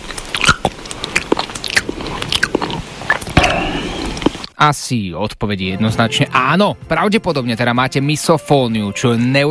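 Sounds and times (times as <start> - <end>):
loud chewing and mouth noises while eating: 0.0 - 4.5
speech: 4.6 - 9.5.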